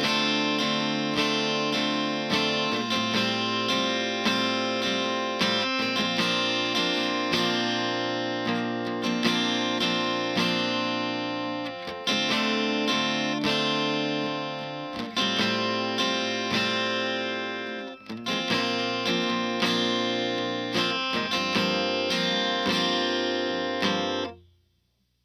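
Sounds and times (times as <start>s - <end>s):
soft chill guitar chords loop in D minor: 0.0s - 24.4s.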